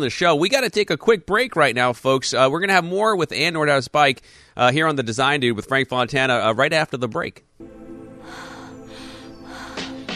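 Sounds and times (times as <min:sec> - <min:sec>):
speech: 0:00.0 - 0:08.4
sustained musical drone: 0:07.6 - 0:10.1
heavy rhythmic breathing in a music track: 0:08.2 - 0:10.1.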